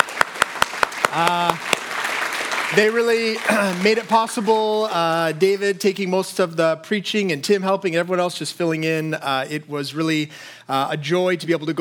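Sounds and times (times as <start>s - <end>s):
group clapping in a steady even rhythm: 0.0s - 5.1s
speech: 1.2s - 1.6s, 2.7s - 11.7s.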